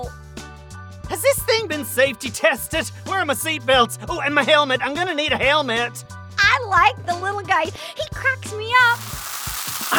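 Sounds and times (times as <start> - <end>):
speech: 1.2 - 9.2
fizzing, sizzling carbonation hiss: 8.8 - 9.9.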